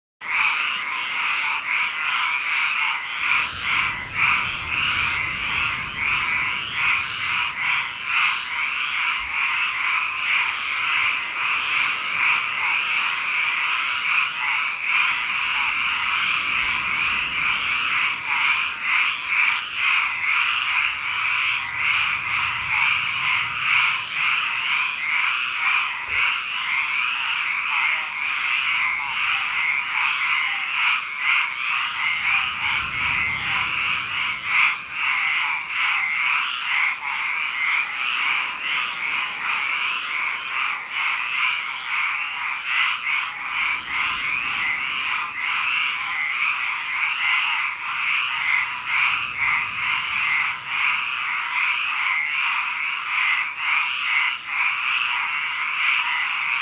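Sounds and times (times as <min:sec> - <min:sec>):
frogs at a lake: 0:00.2 - 0:56.6.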